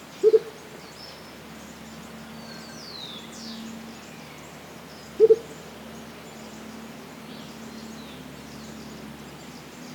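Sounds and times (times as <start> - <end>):
Andean motmot Momotus aequatorialis calling: 0.1 - 9.8.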